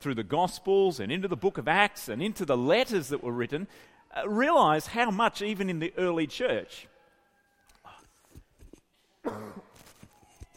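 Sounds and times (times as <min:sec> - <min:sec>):
speech: 0:00.0 - 0:06.9
loud harsh cough: 0:09.2 - 0:09.8
throat clearing: 0:09.2 - 0:09.8.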